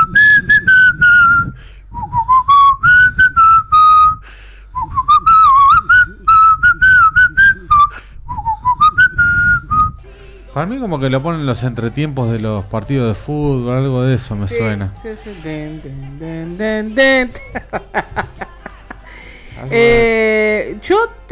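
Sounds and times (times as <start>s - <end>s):
person whistling a lively tune: 0.0s - 4.2s, 4.8s - 10.1s
speech: 10.6s - 18.3s, 19.7s - 20.2s
laughter: 17.0s - 19.7s.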